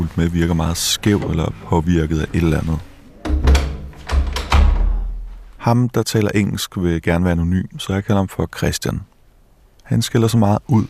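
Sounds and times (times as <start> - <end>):
speech: 0.0 - 2.9, 5.6 - 9.1, 9.9 - 10.8
wooden door pushed shut with thumps and rattles: 3.2 - 5.3.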